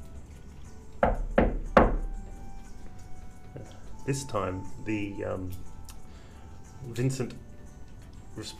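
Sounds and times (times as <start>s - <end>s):
knocking on a wooden door: 1.0s - 2.2s
speech: 4.0s - 5.7s, 6.8s - 7.5s, 8.4s - 8.5s.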